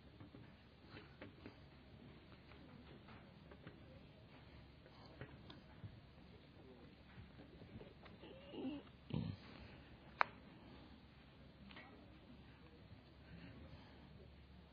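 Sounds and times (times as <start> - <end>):
faint murmur in a church: 0.0 - 14.7
dog giving short low grunting snorts in a church: 8.2 - 9.7.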